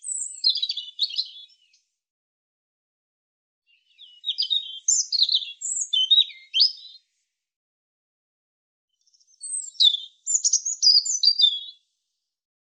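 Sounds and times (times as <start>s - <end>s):
European robin singing: 0.0s - 1.8s, 3.7s - 7.1s, 9.0s - 11.9s.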